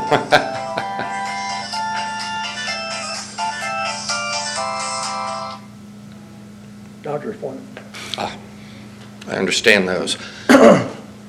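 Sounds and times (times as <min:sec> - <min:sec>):
melodic electronic phone ringtone signalling an incoming call: 0:00.0 - 0:05.7
speech: 0:00.1 - 0:00.6, 0:07.2 - 0:08.4, 0:09.3 - 0:10.8.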